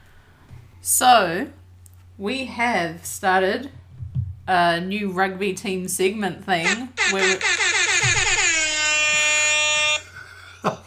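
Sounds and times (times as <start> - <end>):
speech: 0.8 - 1.6, 2.2 - 3.8, 4.5 - 7.6
quiet thump: 3.9 - 4.5
air horn blast: 6.6 - 10.0.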